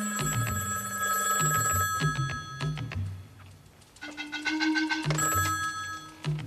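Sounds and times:
wall-wired telephone ringing with a bright metallic bell trill: 0:00.0 - 0:03.0, 0:04.5 - 0:06.4.

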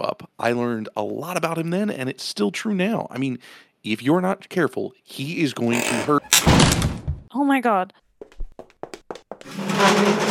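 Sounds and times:
speech: 0:00.4 - 0:06.5, 0:07.5 - 0:08.0, 0:09.6 - 0:10.3
chair and person falling with a crashing clatter: 0:06.3 - 0:07.3, 0:09.4 - 0:10.3.

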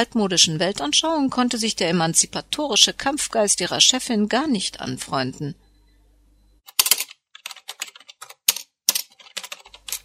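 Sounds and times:
speech: 0:00.0 - 0:05.6
typing on computer keyboard: 0:06.7 - 0:10.0.

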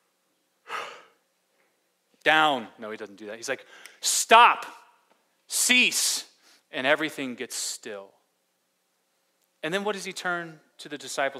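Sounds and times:
person yawning: 0:00.7 - 0:01.2
speech: 0:02.2 - 0:04.8, 0:05.5 - 0:08.2, 0:09.6 - 0:11.3.

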